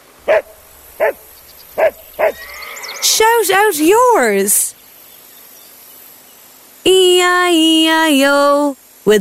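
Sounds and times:
speech: 0:00.2 - 0:04.8, 0:06.8 - 0:09.2
dog barking: 0:00.3 - 0:02.4.

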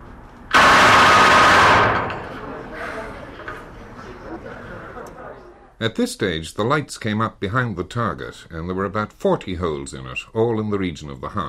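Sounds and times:
rifle firing a full-automatic burst on a firing range: 0:00.5 - 0:02.2
laughter: 0:02.3 - 0:05.7
speech: 0:05.8 - 0:11.4.

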